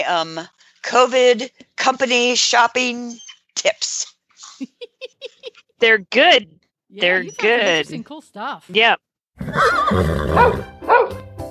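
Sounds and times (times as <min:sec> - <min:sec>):
speech: 0:00.0 - 0:04.8, 0:05.8 - 0:11.2
laughter: 0:04.4 - 0:05.8, 0:07.0 - 0:08.0
horse neighing: 0:09.4 - 0:10.7.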